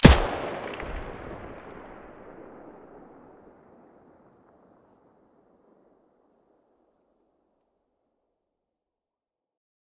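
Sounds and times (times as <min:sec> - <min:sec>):
HK416 rifle gunshot from the muzzle: 0:00.0 - 0:03.1.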